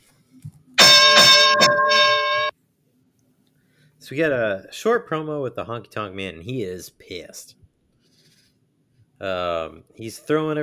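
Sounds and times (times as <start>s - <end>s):
bell ringing with a bright metallic tone: 0.8s - 2.5s
speech: 4.1s - 7.6s, 9.2s - 10.6s.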